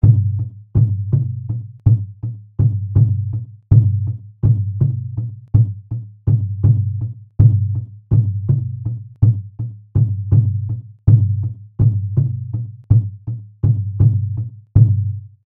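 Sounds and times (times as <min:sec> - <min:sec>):
Indian dholak two-headed hand drum playing Jhaptal: 0:00.0 - 0:15.3.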